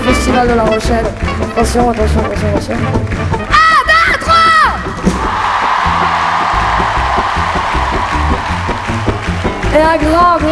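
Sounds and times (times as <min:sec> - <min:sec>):
speech: 0:00.1 - 0:03.4, 0:09.8 - 0:10.4
festival crowd applause: 0:00.9 - 0:10.4
large festival crowd in La Rochelle cheering and shouting: 0:03.4 - 0:10.4.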